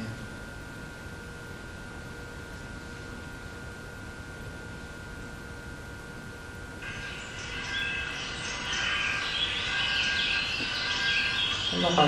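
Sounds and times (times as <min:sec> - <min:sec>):
constant tone: 0:06.2 - 0:12.0
bright chirping bird calls: 0:06.8 - 0:12.0
steady broadband outdoor ambience: 0:06.8 - 0:12.0.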